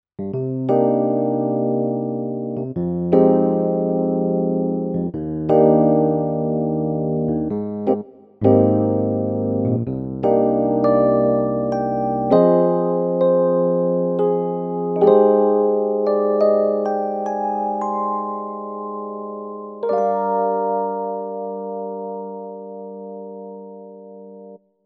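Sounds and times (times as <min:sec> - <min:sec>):
Casio PX-S5000 electric piano: 0:00.2 - 0:24.6.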